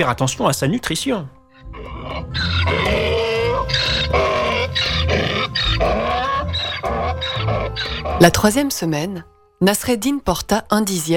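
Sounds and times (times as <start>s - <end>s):
speech: 0.0s - 3.0s, 8.2s - 11.1s
donkey braying in a stable: 1.5s - 8.4s.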